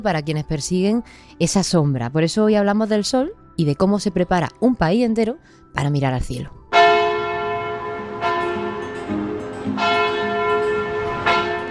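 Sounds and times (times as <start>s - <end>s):
speech: 0.0s - 6.6s
church bells ringing: 6.7s - 11.6s.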